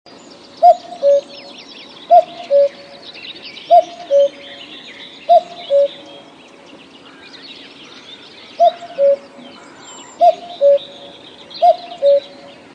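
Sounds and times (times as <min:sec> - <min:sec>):
small birds chirping: 0:00.1 - 0:12.7
common cuckoo calling: 0:00.6 - 0:06.4, 0:08.5 - 0:12.7.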